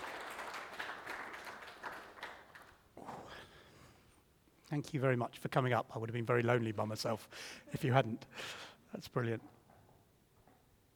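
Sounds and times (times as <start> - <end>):
audience applauding: 0.0 - 2.8
speech: 4.7 - 9.6.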